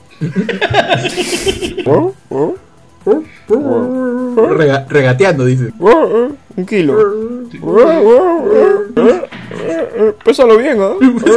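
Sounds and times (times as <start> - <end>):
laughter: 0.2 - 2.1
speech: 0.2 - 11.3
person imitating a dog whimpering: 1.8 - 4.6, 5.8 - 10.2.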